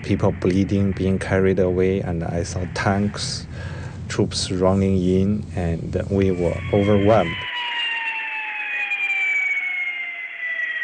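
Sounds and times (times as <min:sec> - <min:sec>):
speech: 0:00.1 - 0:07.5
ambulance siren wailing: 0:05.6 - 0:10.8.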